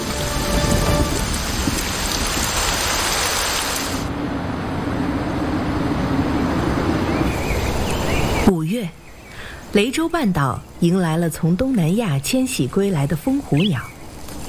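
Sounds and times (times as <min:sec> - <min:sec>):
heavy storm rain pounding land and dense forest: 0:00.0 - 0:08.4
speech: 0:09.8 - 0:13.9.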